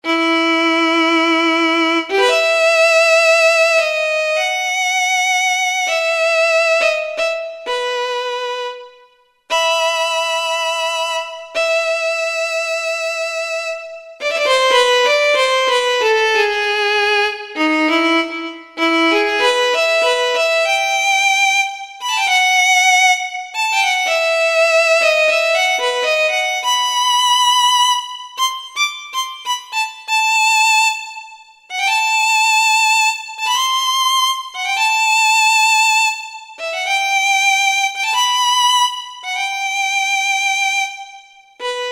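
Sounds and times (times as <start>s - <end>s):
marcato violin from Kurzweil K2000 orchestral ROM: 0.0s - 41.9s.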